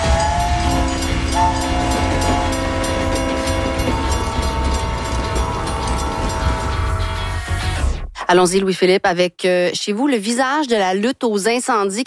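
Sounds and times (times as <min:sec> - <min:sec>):
train rumbling: 0:00.0 - 0:08.1
speech: 0:08.3 - 0:12.0.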